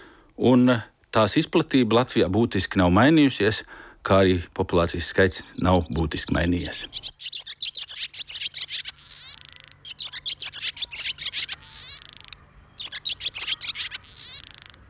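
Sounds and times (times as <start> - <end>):
speech: 0.4 - 7.4
barn swallow twittering: 5.3 - 14.8.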